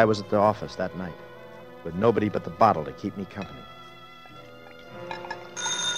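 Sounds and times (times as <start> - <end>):
speech: 0.0 - 3.8
telephone ringing with electronic trill in an empty office building: 5.5 - 5.9.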